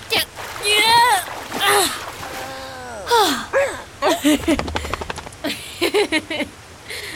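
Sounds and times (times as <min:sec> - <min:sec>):
salt water splashing as a dog climbs out: 0:00.0 - 0:05.1
person groaning with strain while helping a dog climb out: 0:01.6 - 0:04.2.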